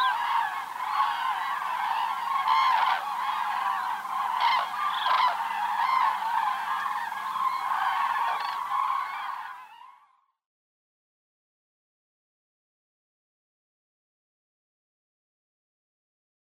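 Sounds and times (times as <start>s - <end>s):
common crane flock honking and trumpeting: 0.0s - 10.0s.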